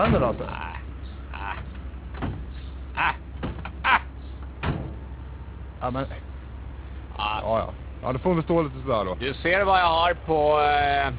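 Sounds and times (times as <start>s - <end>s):
speech: 0.0s - 0.8s, 5.8s - 6.3s, 7.4s - 11.1s
steady low engine-like rumble: 0.0s - 11.1s
door being pushed and shut, thuds and rattles: 1.6s - 2.6s, 3.4s - 3.7s, 4.6s - 5.0s.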